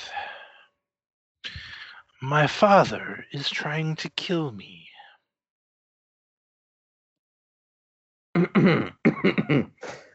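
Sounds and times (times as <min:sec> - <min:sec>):
speech: 0:02.2 - 0:04.9, 0:08.4 - 0:10.0
woman coughing in a harsh fit: 0:08.6 - 0:09.6.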